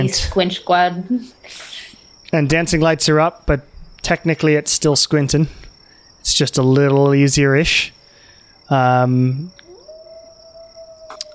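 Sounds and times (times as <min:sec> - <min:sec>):
speech: 0:00.0 - 0:05.6, 0:06.2 - 0:08.0, 0:08.7 - 0:09.6
harmonic wailing cry: 0:09.1 - 0:11.3
coyote howling: 0:09.4 - 0:11.3.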